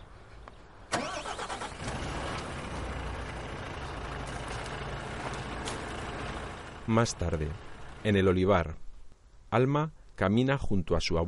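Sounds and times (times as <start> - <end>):
truck engine starting from the cab: 0.9 - 8.3
speech: 6.9 - 8.8, 9.5 - 11.2.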